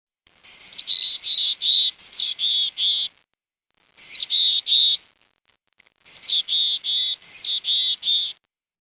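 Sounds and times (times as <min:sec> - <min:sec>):
mountain chickadee giving harsh calls with buzzy notes: 0:00.4 - 0:03.1, 0:04.0 - 0:05.0, 0:06.1 - 0:08.4.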